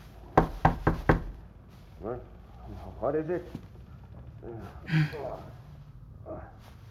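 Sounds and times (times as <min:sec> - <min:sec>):
light taps and loud firm knocks on a door: 0:00.4 - 0:01.4
speech: 0:02.0 - 0:03.7, 0:04.4 - 0:05.6.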